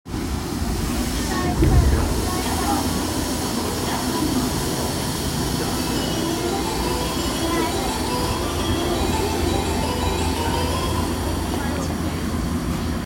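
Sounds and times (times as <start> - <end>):
train sounds on the Fukutoshin Line south of Kita-sando: 0.1 - 13.0.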